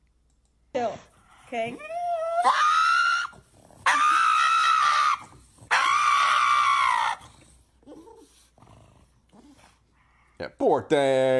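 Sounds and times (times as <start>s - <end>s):
speech: 0.8s - 2.7s, 10.6s - 11.3s
dog screaming while having its nails clipped: 1.8s - 7.4s.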